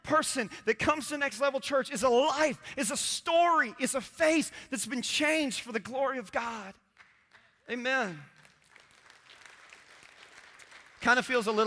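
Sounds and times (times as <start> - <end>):
speech: 0.1 - 6.8, 7.7 - 8.3, 11.0 - 11.6
scattered audience applause: 8.4 - 11.5.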